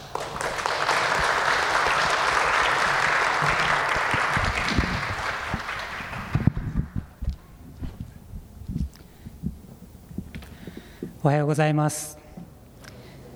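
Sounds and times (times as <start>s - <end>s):
room full of people applauding: 0.0s - 7.0s
speech: 11.2s - 12.2s.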